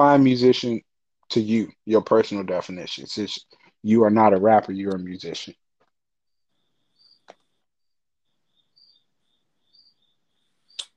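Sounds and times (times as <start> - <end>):
speech: 0.0 - 5.6
crickets chirping: 6.3 - 10.9.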